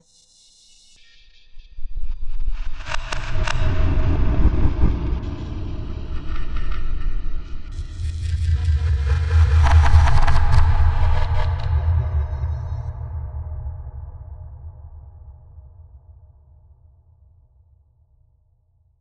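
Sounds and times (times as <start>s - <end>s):
scary noise: 2.6s - 13.7s.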